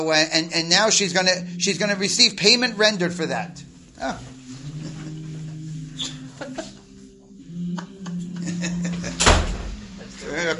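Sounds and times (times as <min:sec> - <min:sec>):
speech: 0:00.0 - 0:04.3
steady low hum: 0:00.0 - 0:10.5
voices: 0:00.0 - 0:10.5
laughter: 0:04.0 - 0:10.4
door shutting with a solid thud: 0:08.9 - 0:10.1.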